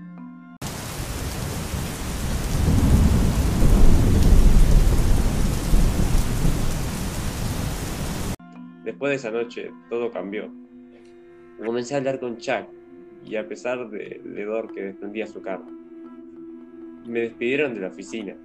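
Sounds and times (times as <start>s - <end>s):
deep rumbling thunder: 0.6s - 8.4s
heavy rain pouring: 0.6s - 8.4s
speech: 9.0s - 10.6s, 11.6s - 15.8s, 17.1s - 18.4s.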